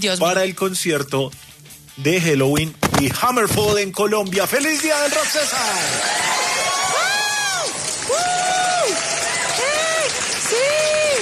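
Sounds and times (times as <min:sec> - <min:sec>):
speech: 0:00.0 - 0:06.8
dense crowd clapping: 0:04.4 - 0:11.2
individual voices whooping: 0:04.9 - 0:11.2
live crowd roaring: 0:05.2 - 0:11.2.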